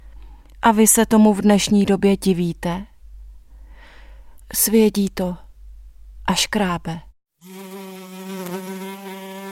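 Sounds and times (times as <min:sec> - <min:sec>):
speech: 0:00.6 - 0:02.9, 0:04.5 - 0:05.4, 0:06.3 - 0:07.8
house fly buzzing: 0:07.4 - 0:09.5.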